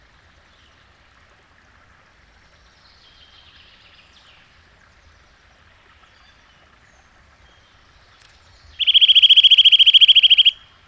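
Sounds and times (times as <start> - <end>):
Eurasian nuthatch fast whistled trill: 8.8 - 10.6.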